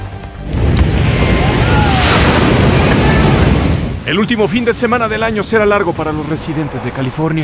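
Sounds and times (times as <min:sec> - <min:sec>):
large storm waves crashing at high tide in California: 0:00.4 - 0:06.2
gusting wind buffeting the microphone: 0:00.6 - 0:04.1
speech: 0:04.1 - 0:07.4.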